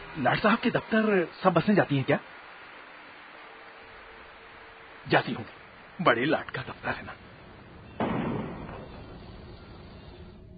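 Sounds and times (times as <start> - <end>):
speech: 0.2 - 2.4, 5.1 - 7.2
faint gunshot during a city riot: 8.0 - 9.7.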